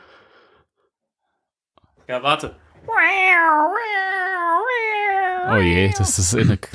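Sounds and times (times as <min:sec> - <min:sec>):
speech: 0:02.1 - 0:06.7
person imitating a cat meow: 0:02.9 - 0:06.2.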